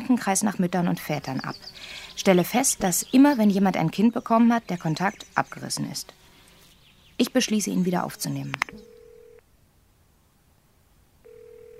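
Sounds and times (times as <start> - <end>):
speech: 0.1 - 6.2, 7.2 - 8.9
telephone ringback tone: 8.8 - 9.4, 11.2 - 11.7.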